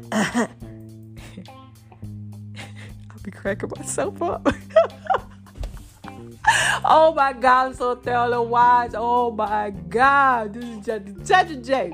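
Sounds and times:
raspy throat clearing: 0.0s - 0.6s
speech: 0.0s - 0.7s, 3.2s - 5.0s, 6.8s - 11.9s.

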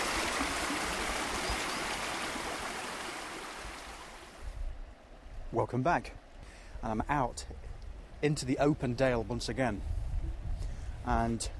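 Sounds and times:
river water rushing: 0.0s - 4.4s
speech: 5.5s - 6.2s, 6.8s - 10.0s, 11.0s - 11.5s.

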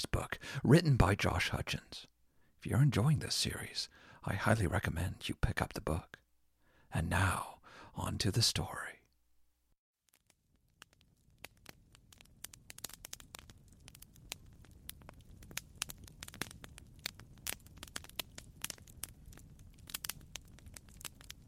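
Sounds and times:
speech: 0.0s - 6.2s, 6.9s - 9.0s
campfire crackling with pops and snaps: 10.0s - 21.4s.

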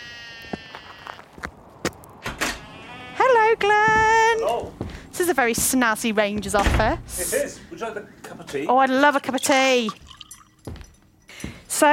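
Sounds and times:
sheep bleating outdoors on the road: 0.0s - 1.3s, 2.6s - 3.6s
speech: 4.6s - 10.0s.

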